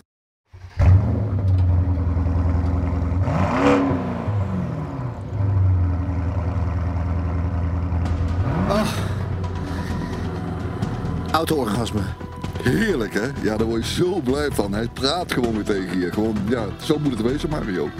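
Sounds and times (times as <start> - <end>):
car engine revving over an idle: 0.5 - 12.6
speech: 11.4 - 17.9.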